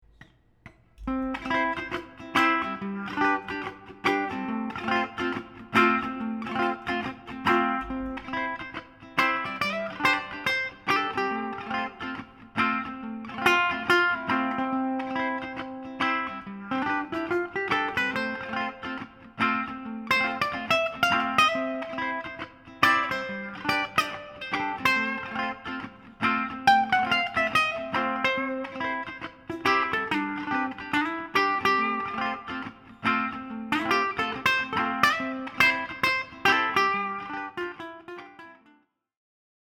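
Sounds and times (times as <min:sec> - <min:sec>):
ukulele loop: 0:00.0 - 0:38.6.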